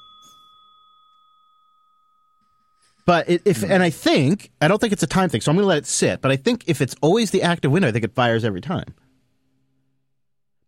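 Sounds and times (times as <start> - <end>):
computer alert electronic bell ding: 0.0 - 3.2
speech: 3.1 - 9.0.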